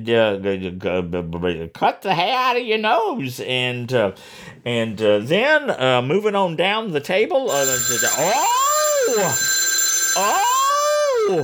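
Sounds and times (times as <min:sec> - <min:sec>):
speech: 0:00.0 - 0:09.6, 0:10.2 - 0:10.5, 0:11.3 - 0:11.4
electronic telephone ringing with warbling pitch: 0:07.5 - 0:11.4.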